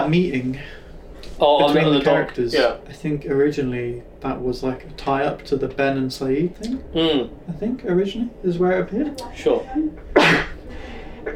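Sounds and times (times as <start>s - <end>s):
speech: 0.0s - 10.4s
person sneezing: 10.1s - 10.6s.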